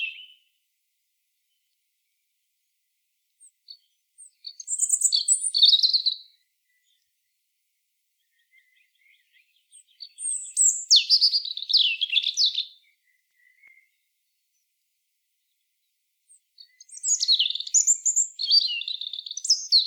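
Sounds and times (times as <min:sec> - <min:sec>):
European robin Erithacus rubecula whistling and trilling: 0:00.0 - 0:00.5, 0:03.7 - 0:07.0, 0:08.3 - 0:13.9, 0:16.6 - 0:19.8.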